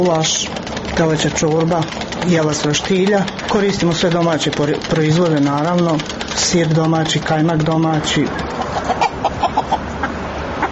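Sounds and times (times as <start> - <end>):
speech: 0.0 - 9.0
chickens clucking on a farm estate: 7.2 - 10.7.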